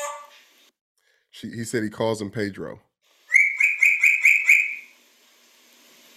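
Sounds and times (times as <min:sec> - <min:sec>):
speech: 0:01.4 - 0:02.9
talking grey parrot kept in a house giving buzzy whistled calls: 0:03.3 - 0:05.0.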